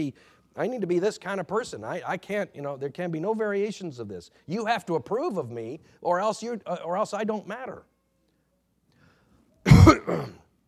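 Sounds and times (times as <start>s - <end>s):
speech: 0.0s - 7.9s, 10.1s - 10.4s
person coughing into a microphone: 9.7s - 10.4s.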